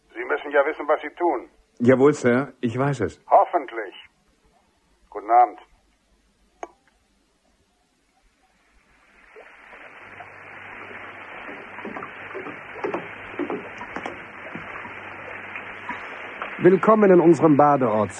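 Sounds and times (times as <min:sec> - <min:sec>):
speech: 0:00.5 - 0:04.0, 0:05.2 - 0:05.7, 0:16.6 - 0:18.1
heavy rain: 0:09.2 - 0:18.1.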